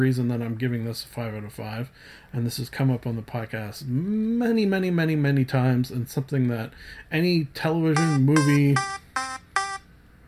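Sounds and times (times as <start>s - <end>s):
speech: 0.0s - 9.3s
timer buzzer giving harsh electronic buzzes: 8.0s - 9.9s.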